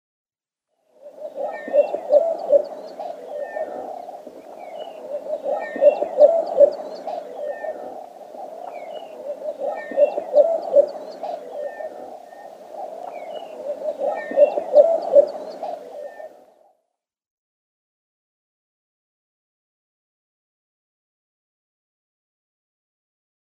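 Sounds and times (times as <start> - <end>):
Dwarf Bittern calling: 1.0 - 16.4.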